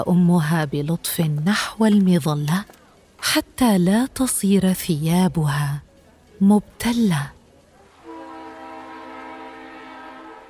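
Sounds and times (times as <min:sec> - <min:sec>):
speech: 0:00.0 - 0:07.4
rumble of arriving train: 0:07.6 - 0:10.4
train horn blast: 0:08.0 - 0:10.4.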